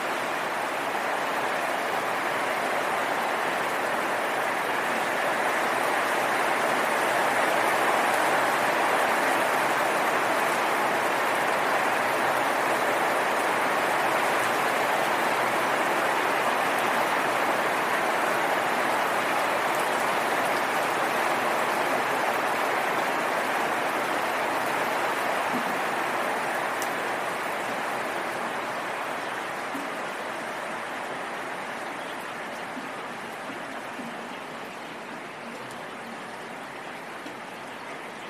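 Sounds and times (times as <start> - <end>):
rain: 0.0 - 38.2.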